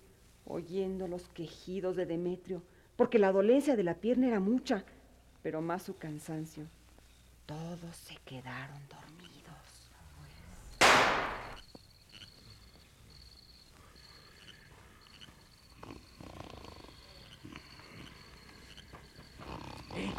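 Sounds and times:
speech: 0.5 - 6.8, 7.5 - 9.4
faint insect-like chirping: 5.1 - 20.1
gunshot: 10.8 - 11.6.

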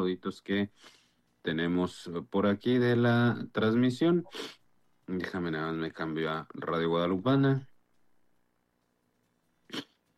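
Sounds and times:
speech: 0.0 - 7.7, 9.7 - 9.9
person sneezing: 9.7 - 10.0.

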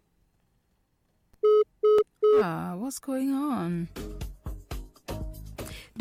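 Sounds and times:
electronic telephone ring tones on a call-in line: 1.4 - 2.4
speech: 2.4 - 4.3.

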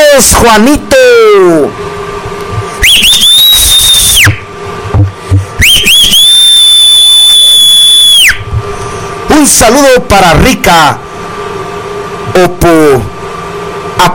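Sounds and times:
speech: 0.2 - 1.9, 9.4 - 11.1, 12.4 - 13.2, 14.0 - 14.1
loud human whistle: 2.8 - 4.4, 5.6 - 8.4.

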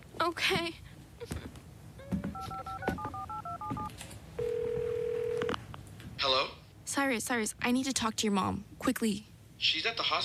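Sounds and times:
faint noise: 0.0 - 10.2
speech: 0.3 - 1.5, 6.3 - 10.2
touch-tone keypad beeps dialing a phone number: 2.4 - 5.5.

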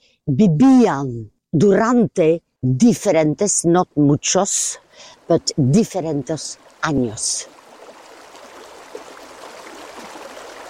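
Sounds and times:
speech: 0.2 - 7.6
river water flowing along the bank: 4.8 - 10.6.

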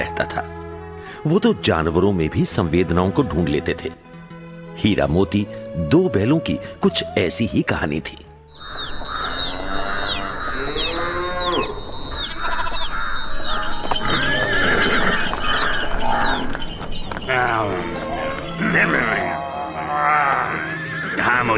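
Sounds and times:
speech: 1.2 - 4.0, 4.8 - 8.2
goats bleating in an animal pound: 8.6 - 21.5.

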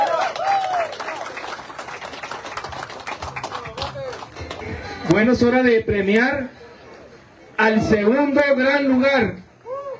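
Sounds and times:
audience applause for winning team: 0.0 - 5.0
speech: 5.1 - 6.6, 7.6 - 9.4.

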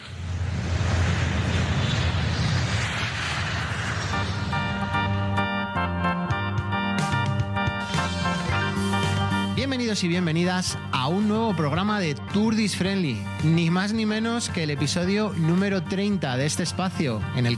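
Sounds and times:
airplane engine tonal whine: 0.0 - 11.4
airplane taking off: 0.0 - 17.5
speech: 9.9 - 17.5.

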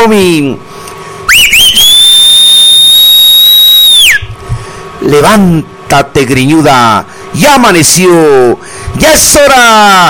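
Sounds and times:
speech: 0.0 - 0.8, 5.0 - 10.0
person whistling loudly: 1.3 - 4.3.

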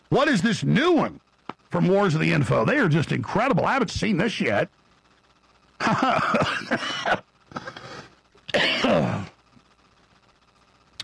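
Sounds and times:
speech: 0.1 - 4.8, 5.8 - 7.7
person coughing caused by pollen: 5.9 - 9.4
person clearing throat caused by pollen: 6.0 - 7.9, 8.5 - 9.4.

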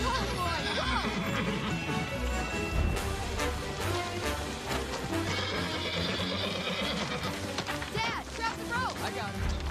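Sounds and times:
powerful horse whinnying while ridden in a rodeo-style setting: 0.1 - 2.1, 5.1 - 7.5
horse galloping with clatter and thumping in a rodeo-style setting: 3.2 - 9.7.

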